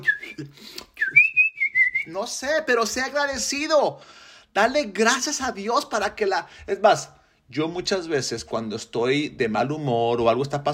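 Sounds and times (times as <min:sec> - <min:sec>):
speech: 0:00.0 - 0:00.8, 0:02.1 - 0:10.7
person whistling a short lilting tune: 0:00.0 - 0:02.3.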